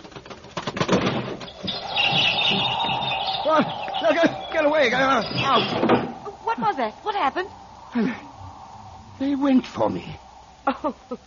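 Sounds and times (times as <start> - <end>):
bird wings fluttering: 0.0 - 9.0
bird chirping shrilly: 1.2 - 11.2
rising bird cries: 1.4 - 9.2
speech: 3.5 - 8.3, 9.2 - 11.2.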